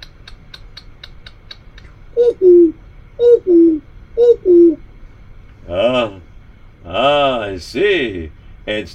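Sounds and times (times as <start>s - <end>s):
voice imitating a big clock ticking with tick-tock syllables: 0.0s - 1.9s
speech: 2.2s - 4.8s, 5.6s - 8.9s.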